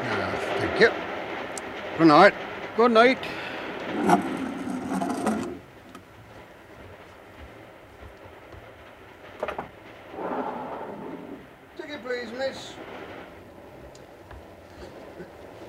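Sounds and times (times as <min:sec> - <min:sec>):
steady low rumble inside a moving train carriage: 0:00.0 - 0:15.6
speech: 0:00.8 - 0:01.1, 0:02.0 - 0:04.3
scraping and rubbing noises from the train coach: 0:03.8 - 0:06.0.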